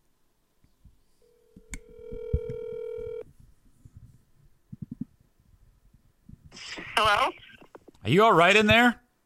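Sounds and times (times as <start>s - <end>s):
phone being dialed: 1.6s - 3.2s
speech: 8.1s - 9.0s.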